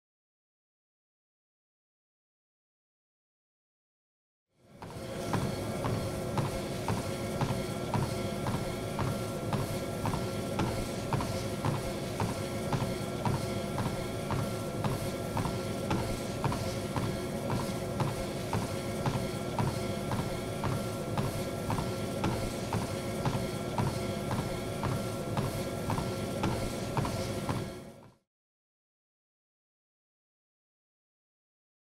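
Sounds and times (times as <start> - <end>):
treadmill: 4.6 - 28.2.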